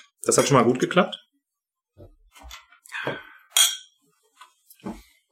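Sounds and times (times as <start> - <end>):
speech: 0.3 - 1.2
glasses clinking: 3.6 - 4.0.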